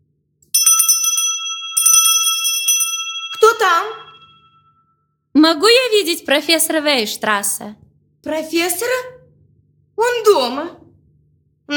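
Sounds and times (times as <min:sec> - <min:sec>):
door bell ringing in a rapid metallic trill: 0:00.5 - 0:04.8
speech: 0:05.4 - 0:09.2, 0:10.0 - 0:10.8.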